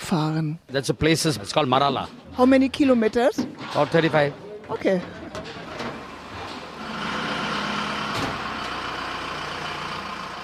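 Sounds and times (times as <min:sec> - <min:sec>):
speech: 0:00.1 - 0:05.6
convoy truck engines starting up: 0:03.6 - 0:10.4.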